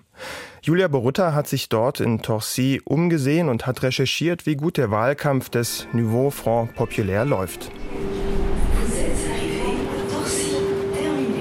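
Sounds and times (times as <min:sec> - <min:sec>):
speech: 0:00.6 - 0:08.3
rail noise of a commuter train pulling into a station: 0:05.4 - 0:11.4
suburban commuter train rumbling: 0:05.4 - 0:11.4
sustained electric whine of a commuter train: 0:05.4 - 0:11.4.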